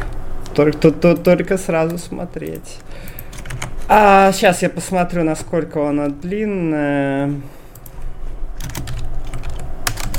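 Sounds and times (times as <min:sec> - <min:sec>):
speech: 0:00.6 - 0:07.6
typing on a computer keyboard: 0:01.9 - 0:03.7, 0:08.6 - 0:10.1.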